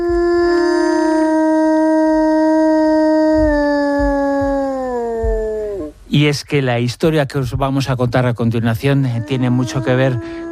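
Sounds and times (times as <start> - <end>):
wolf howling to its pack: 0.0 - 5.9, 9.0 - 10.4
speech: 6.2 - 10.4.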